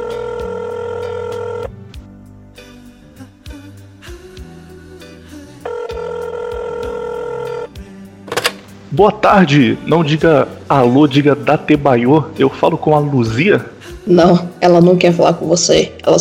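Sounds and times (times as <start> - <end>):
telephone ringing tones of a phone call being placed: 0.0 - 1.7, 5.6 - 7.7
low music: 0.0 - 16.2
speech: 9.0 - 16.2.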